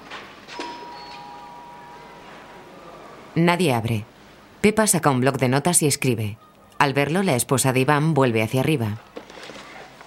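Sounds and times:
apartment doorbell electronic chime: 0.5s - 2.3s
speech: 3.4s - 9.1s.

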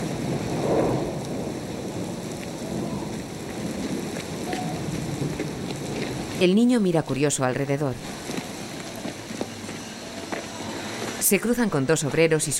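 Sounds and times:
low rumble of thunder: 0.0s - 6.4s
steady rain pouring: 0.0s - 11.4s
speech: 6.4s - 8.2s, 11.3s - 12.5s.

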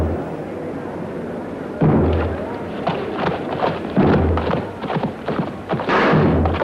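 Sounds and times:
heavy thuds: 1.8s - 6.6s
charging horses galloping: 2.0s - 6.6s.

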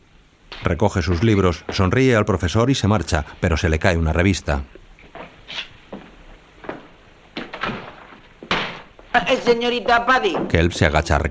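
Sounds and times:
speech: 0.6s - 4.8s, 9.4s - 11.2s
person bumping into a door with dull thuds and knocks: 7.4s - 9.0s.

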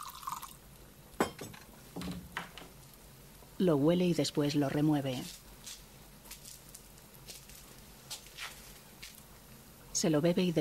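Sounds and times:
rosé wine trickling into a glass: 0.0s - 0.6s
sharp glassy clinks: 1.2s - 1.6s
speech: 3.6s - 5.4s, 10.0s - 10.5s.

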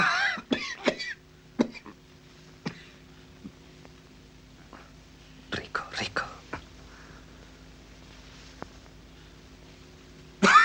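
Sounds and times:
man coughing: 0.0s - 2.0s, 10.4s - 10.6s
faint hum: 0.0s - 10.6s.

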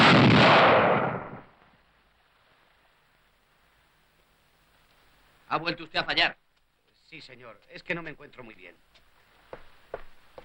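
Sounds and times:
gunfire at naval shooting practice: 0.0s - 1.5s
speech: 5.5s - 6.4s, 7.1s - 9.0s.

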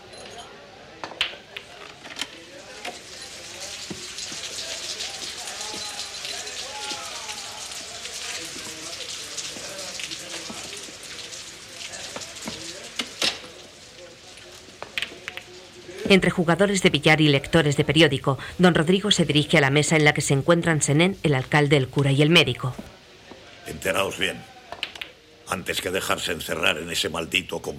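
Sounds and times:
indistinct voices murmuring faintly: 1.6s - 24.8s
steady rain hiss: 1.7s - 27.7s
sharp drips and splashes: 2.4s - 16.6s
speech: 16.1s - 22.9s, 23.8s - 24.5s, 25.5s - 27.7s.

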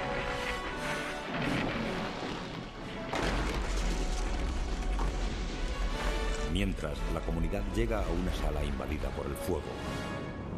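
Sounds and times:
rock fragment crashing against the far side of a chasm: 0.0s - 7.6s
speech: 6.6s - 10.2s.

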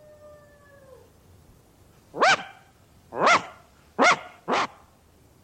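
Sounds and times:
dog barking on a farm: 2.2s - 4.8s.

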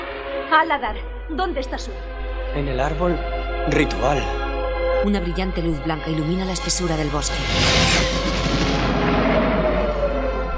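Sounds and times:
speech: 0.5s - 4.4s, 5.0s - 8.7s
giant flaming meteorite falling from the sky with roaring rumble: 7.5s - 10.5s.

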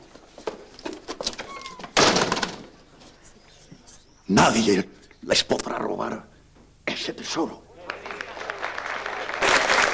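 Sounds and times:
speech: 4.3s - 6.3s, 7.0s - 7.6s
parents and officials at a school gathering applauding standing: 7.8s - 9.9s.

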